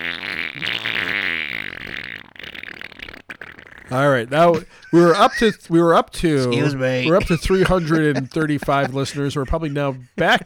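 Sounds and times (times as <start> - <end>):
long buzzy fart sound: 0.0 - 4.3
laughter: 3.9 - 10.4
speech: 3.9 - 10.4.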